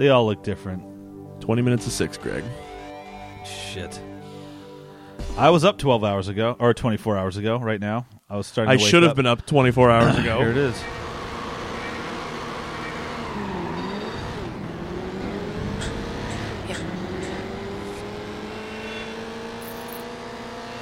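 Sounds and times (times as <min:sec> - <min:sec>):
speech: 0:00.0 - 0:02.7, 0:03.4 - 0:04.1, 0:05.4 - 0:11.0
car engine revving: 0:10.0 - 0:20.7.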